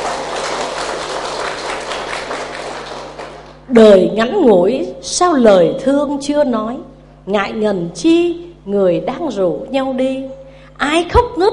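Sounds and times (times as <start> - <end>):
crowd applause: 0.0 - 3.6
speech: 3.7 - 11.5.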